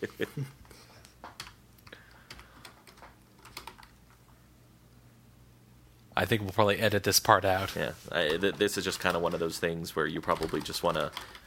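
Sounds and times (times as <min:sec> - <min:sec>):
speech: 0:00.0 - 0:00.6, 0:06.2 - 0:11.4
faint low hum: 0:00.0 - 0:11.4
typing on a computer keyboard: 0:01.3 - 0:04.1, 0:10.2 - 0:11.4.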